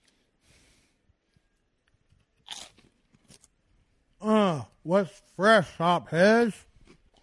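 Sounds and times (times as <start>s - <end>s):
breathy sounds: 0.0s - 1.5s
crunchy food being bitten and chewed: 1.3s - 4.0s, 6.6s - 7.2s
speech: 4.8s - 6.7s.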